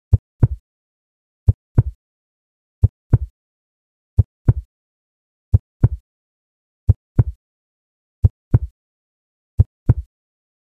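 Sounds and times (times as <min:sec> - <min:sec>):
heartbeat sound effect: 0:00.1 - 0:00.6, 0:01.8 - 0:02.0, 0:03.1 - 0:03.3, 0:04.2 - 0:04.7, 0:05.5 - 0:06.0, 0:06.9 - 0:07.4, 0:08.2 - 0:08.7, 0:09.6 - 0:10.1.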